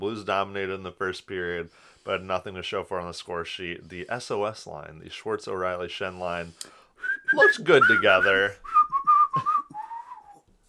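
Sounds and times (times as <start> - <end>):
speech: 0.0 - 8.7, 9.3 - 9.5
person whistling a short pop song melody: 7.0 - 10.5.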